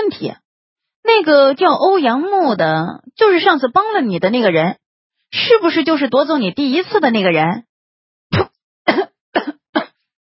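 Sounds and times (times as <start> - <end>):
speech: 0.1 - 0.4, 1.0 - 7.7
person coughing after choking on a drink: 8.4 - 10.0.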